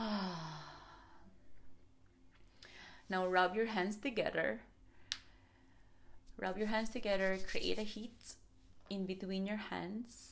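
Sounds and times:
long sighing exhale after stretching the arms overhead: 0:00.0 - 0:01.3
speech: 0:03.1 - 0:04.7, 0:06.4 - 0:10.3.

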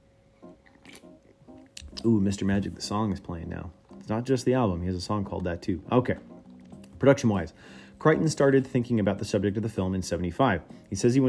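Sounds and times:
faint steady hum: 0:00.0 - 0:11.2
brief wet mouth clicks: 0:00.5 - 0:02.0
person sipping a drink: 0:00.6 - 0:01.8
speech: 0:02.0 - 0:06.3, 0:07.0 - 0:11.2.

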